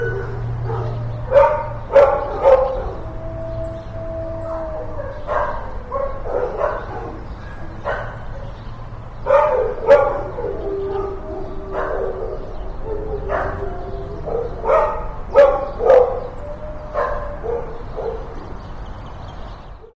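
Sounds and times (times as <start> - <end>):
dog barking in a kennel: 0.0 - 3.0, 5.2 - 8.6, 9.2 - 18.4.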